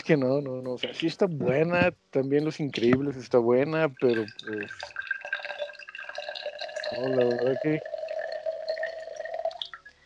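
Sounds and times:
speech: 0.1s - 5.0s, 6.9s - 7.9s
water being poured or sipped from a glass: 3.9s - 9.9s.

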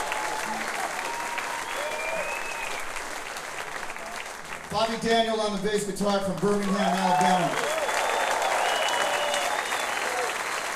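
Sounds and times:
audience cheers: 0.0s - 4.3s, 6.4s - 10.7s
concert audience applause for a guitarist: 0.0s - 10.7s
faint audience whistles: 1.4s - 3.0s, 7.7s - 10.3s
speech: 4.7s - 7.8s.

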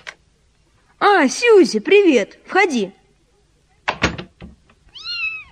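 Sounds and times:
speech: 1.2s - 3.0s
kitten meowing: 4.9s - 5.4s.

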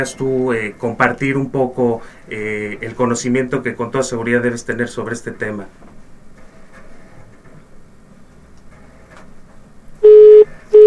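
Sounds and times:
speech: 0.0s - 5.9s
telephone busy signal after a dropped call: 10.0s - 10.8s.

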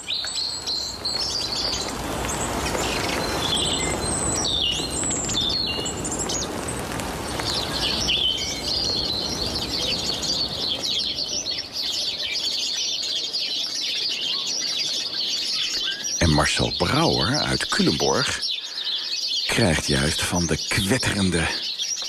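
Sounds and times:
robin, song thrush and great spotted woodpecker singing in spring rain: 0.0s - 22.0s
spring rain falling in the dunes: 0.1s - 12.3s, 16.2s - 21.6s
speech: 16.6s - 18.5s, 19.6s - 21.7s.

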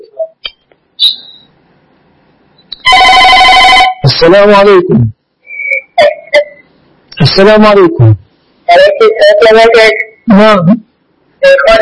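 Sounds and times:
short high electronic telephone chirp: 1.0s - 1.6s, 5.4s - 6.7s
telephone ringing: 2.8s - 4.0s
speech: 4.2s - 5.2s, 7.3s - 10.8s, 11.4s - 11.8s.

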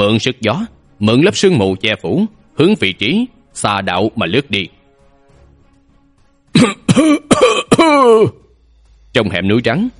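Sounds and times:
speech: 0.0s - 4.8s, 6.6s - 8.4s, 9.2s - 9.9s
dry coughing of soldiers with a cold in a snowy gorge: 6.5s - 8.5s.

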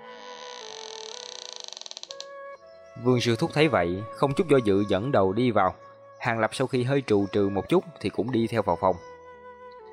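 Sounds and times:
room door creaking open by itself: 0.0s - 2.3s
speech: 3.0s - 9.1s.

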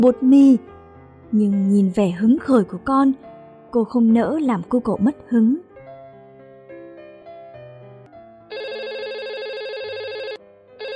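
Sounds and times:
speech: 0.0s - 5.6s
landline telephone ringing at home: 8.5s - 10.9s.

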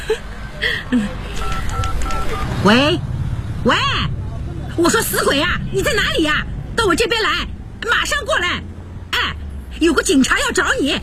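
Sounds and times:
speech: 0.1s - 1.5s, 2.6s - 4.2s, 4.8s - 8.7s, 9.8s - 11.0s
first-generation Motorola mobile phone keypad beeps from dialing: 1.4s - 2.5s.

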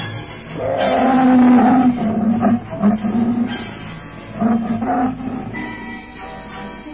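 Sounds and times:
tiger roaring: 0.5s - 5.7s.

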